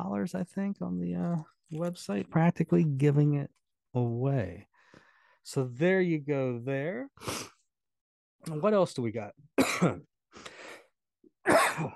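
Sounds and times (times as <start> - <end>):
speech: 0.0 - 4.7, 5.4 - 7.5, 8.4 - 10.5, 11.5 - 11.9
man coughing in short harsh bursts: 9.6 - 10.1, 11.4 - 11.9.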